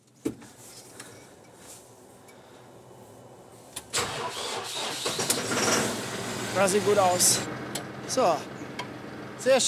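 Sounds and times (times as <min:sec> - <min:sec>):
tractor engine cranking and starting: 0:03.8 - 0:08.0
speech: 0:06.6 - 0:08.6, 0:09.4 - 0:09.6.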